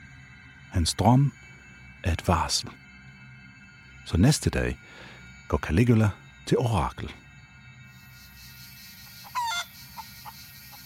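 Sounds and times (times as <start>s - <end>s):
speech: 0.7s - 2.8s, 4.1s - 7.2s
short nasal hen call: 9.0s - 10.8s.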